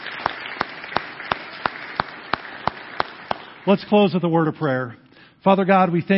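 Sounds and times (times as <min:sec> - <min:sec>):
audience applause for children singing: 0:00.0 - 0:03.8
sharp single clap: 0:01.3 - 0:03.6
speech: 0:03.6 - 0:06.1.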